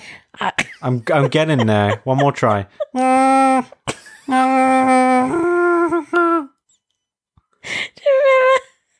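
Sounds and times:
speech: 0.4s - 4.4s
person imitating a Wookiee's howling growl: 2.9s - 6.5s.

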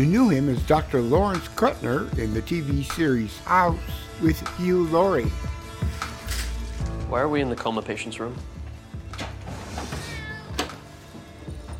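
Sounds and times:
speech: 0.0s - 5.6s, 7.1s - 8.6s
cat meowing in a drawn-out wavering cry: 9.8s - 10.8s.

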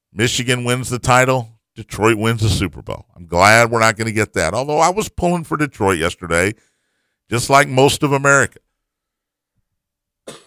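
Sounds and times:
faint low rumbles: 0.2s - 6.6s
speech: 0.2s - 6.7s, 7.3s - 8.6s
person coughing: 10.3s - 10.4s.

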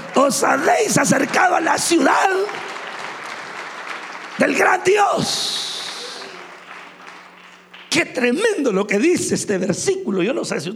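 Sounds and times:
congregation clapping hands: 0.0s - 8.4s
speech: 0.2s - 2.8s, 4.4s - 5.7s, 7.9s - 10.7s.

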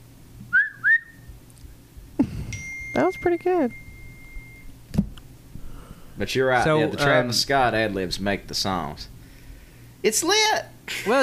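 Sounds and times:
quiet low hum: 0.0s - 11.2s
person whistling two sliding notes: 0.5s - 1.3s
speech: 3.0s - 3.8s, 6.2s - 9.1s, 10.0s - 11.2s.

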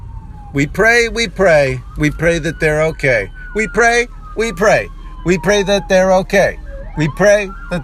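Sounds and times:
emergency truck and police SUV sirens wailing: 0.0s - 7.8s
speech: 0.5s - 7.8s.

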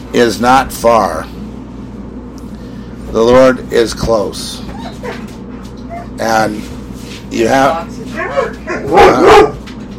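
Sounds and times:
speech: 0.1s - 1.4s, 3.1s - 5.3s, 6.2s - 9.6s
dog barking in short sharp yaps: 8.2s - 9.7s.

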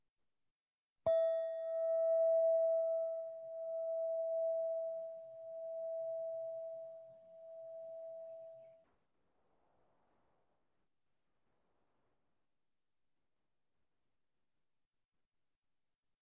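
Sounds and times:
meditation bell struck and ringing: 1.1s - 8.7s.

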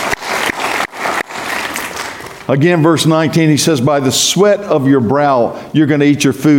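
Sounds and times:
congregation applauding: 0.0s - 2.5s
speech: 2.5s - 6.5s.

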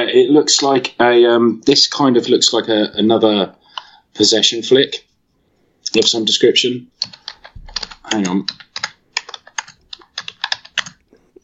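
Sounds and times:
speech: 0.0s - 3.6s, 4.2s - 5.1s, 5.9s - 7.2s, 8.1s - 8.6s
typing on a computer keyboard: 7.0s - 11.2s.

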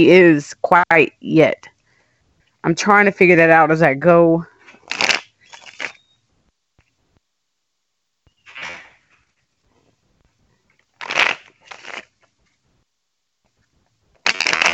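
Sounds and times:
speech: 0.0s - 1.7s, 2.6s - 5.1s
tarot cards being shuffled and drawn: 4.7s - 6.0s, 11.0s - 12.4s, 14.2s - 14.7s.

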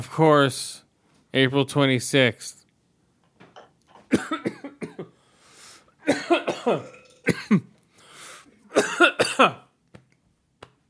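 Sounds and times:
speech: 0.0s - 2.6s, 6.1s - 7.7s, 8.8s - 9.6s
person coughing in rough hacking fits: 4.1s - 5.1s, 6.1s - 7.7s, 8.7s - 9.6s.

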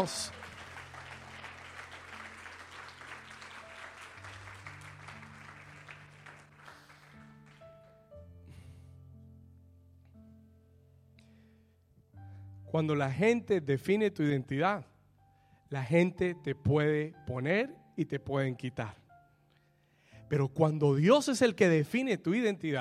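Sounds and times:
speech: 0.0s - 0.4s, 12.7s - 14.9s, 15.7s - 19.0s, 20.3s - 22.7s
church audience applauding: 0.0s - 8.0s.

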